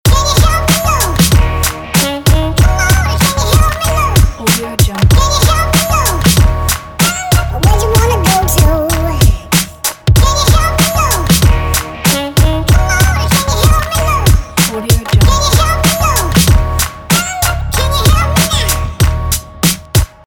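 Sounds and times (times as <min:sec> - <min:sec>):
hip-hop loop: 0:00.1 - 0:20.2.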